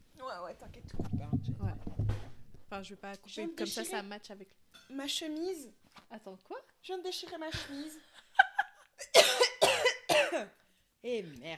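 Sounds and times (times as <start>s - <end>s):
speech: 0.5s - 8.2s, 9.0s - 9.5s, 10.3s - 11.5s
person coughing: 9.1s - 10.5s.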